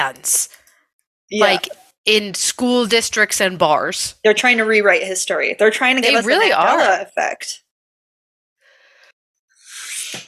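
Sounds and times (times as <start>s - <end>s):
speech: 0.0s - 0.6s, 1.3s - 7.6s
breathy inhale: 8.6s - 9.8s.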